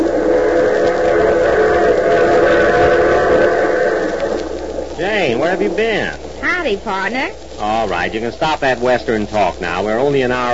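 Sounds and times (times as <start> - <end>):
train rumbling roar: 0.0 - 10.5
speech: 5.4 - 10.5.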